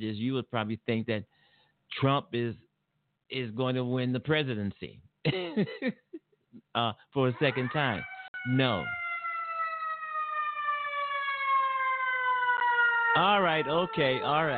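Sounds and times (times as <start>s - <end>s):
speech: 0.0s - 2.7s, 3.3s - 6.2s, 6.8s - 9.0s, 13.2s - 14.5s
ambulance siren wailing passing in the street: 7.2s - 14.5s.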